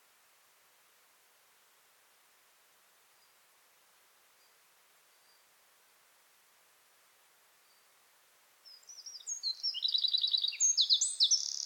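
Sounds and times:
Eurasian wren Troglodytes troglodytes singing with rapid loud trills: 0:08.6 - 0:11.6.

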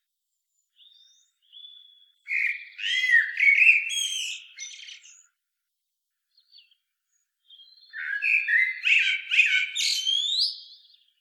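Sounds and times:
common blackbird singing, Turdus merula: 0:00.8 - 0:05.2, 0:07.4 - 0:11.1.

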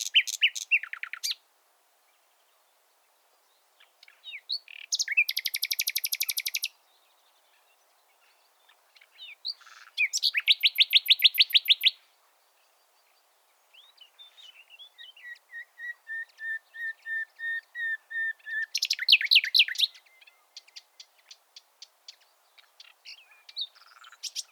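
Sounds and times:
common nightingale Luscinia megarhynchos singing trills: 0:00.0 - 0:24.5.

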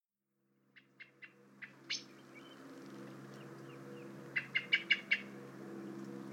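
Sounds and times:
common blackbird ticking notes: 0:00.8 - 0:02.6, 0:03.4 - 0:05.3.

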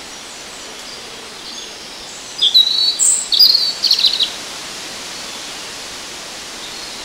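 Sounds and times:
soft hiss of background noise: 0:00.0 - 0:07.0
European robin song: 0:00.8 - 0:04.4.

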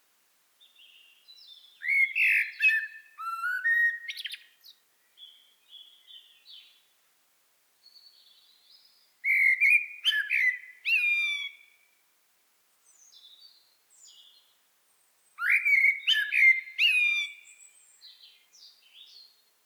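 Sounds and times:
common blackbird Turdus merula singing: 0:00.7 - 0:06.8, 0:07.9 - 0:11.8, 0:15.4 - 0:19.4.

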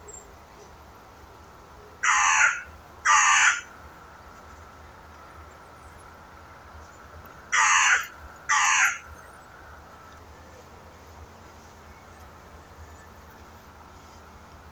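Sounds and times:
carrion crow Corvus corone giving harsh caws: 0:02.0 - 0:03.7, 0:07.5 - 0:09.1.

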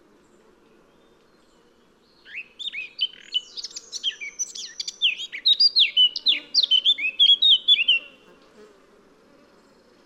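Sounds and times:
Eurasian blackcap Sylvia atricapilla singing: 0:02.2 - 0:08.2.

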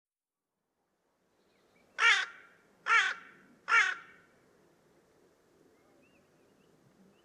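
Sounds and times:
Carrion crow Corvus corone cawing: 0:02.0 - 0:04.3.

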